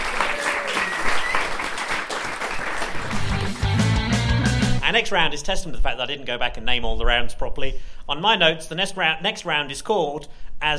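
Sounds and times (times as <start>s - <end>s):
whoops and cheers: 0.0s - 1.9s
crowd applauding: 0.0s - 4.6s
speech: 4.9s - 10.7s.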